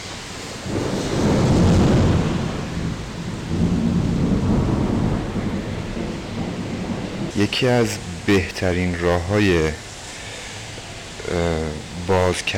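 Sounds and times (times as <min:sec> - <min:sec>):
steady heavy rain hiss in a spring thunderstorm: 0:00.0 - 0:12.5
deep rumbling thunder in a spring thunderstorm: 0:00.5 - 0:09.0
speech: 0:07.5 - 0:09.8, 0:11.3 - 0:12.5.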